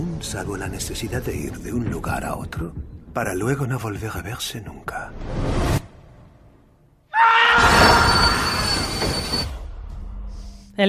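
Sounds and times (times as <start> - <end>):
speech: 0.2 - 5.8
train wheels squealing on rails: 7.8 - 9.6.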